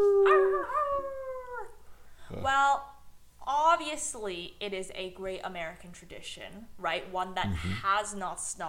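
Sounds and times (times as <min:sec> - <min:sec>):
dog howling: 0:00.1 - 0:01.8
speech: 0:03.8 - 0:08.6.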